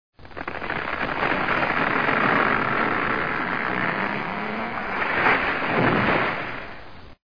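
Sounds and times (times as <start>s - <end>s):
tree falling: 0.2s - 6.8s.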